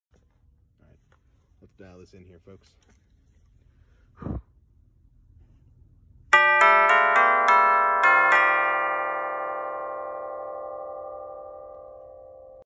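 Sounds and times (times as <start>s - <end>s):
bells instrument ringing: 6.3s - 12.6s.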